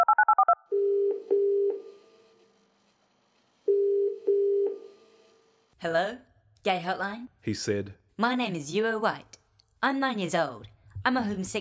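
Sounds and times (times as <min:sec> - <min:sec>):
telephone ringback tone: 0:00.0 - 0:02.0, 0:03.7 - 0:04.9
speech: 0:05.8 - 0:11.5.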